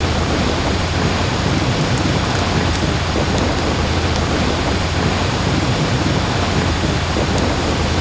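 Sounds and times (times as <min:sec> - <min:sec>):
ice water: 0:00.0 - 0:07.9.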